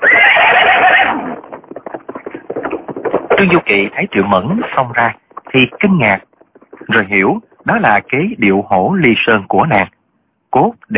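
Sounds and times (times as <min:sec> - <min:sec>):
horse neighing: 0:00.0 - 0:03.4
horse hooves clip-clopping: 0:00.0 - 0:09.3
speech: 0:03.4 - 0:06.3, 0:06.9 - 0:10.9.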